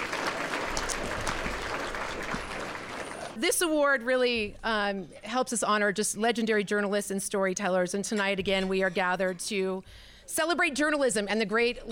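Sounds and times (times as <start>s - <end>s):
audience applauding at a banquet: 0.0s - 3.4s
speech: 3.4s - 11.9s.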